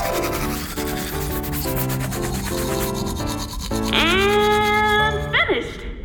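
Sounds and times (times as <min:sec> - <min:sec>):
toothbrushes scrubbing: 0:00.0 - 0:05.4.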